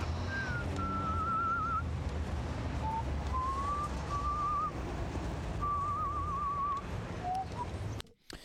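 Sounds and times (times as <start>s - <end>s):
steady windy rumble: 0.0s - 8.0s
eerie wavering horror-film-like whistled melody: 0.2s - 1.8s, 2.8s - 4.8s, 5.6s - 7.8s.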